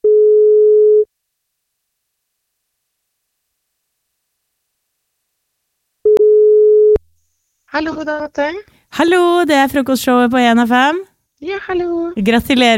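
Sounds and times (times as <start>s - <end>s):
telephone ringback tone while calling: 0.0s - 1.1s, 6.1s - 7.0s
speech: 7.8s - 12.7s.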